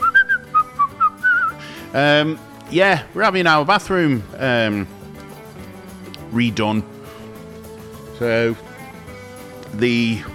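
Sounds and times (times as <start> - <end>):
person whistling a short bright tune: 0.0 - 1.6
speech: 1.9 - 5.0, 6.3 - 6.9, 8.2 - 8.6, 9.7 - 10.3.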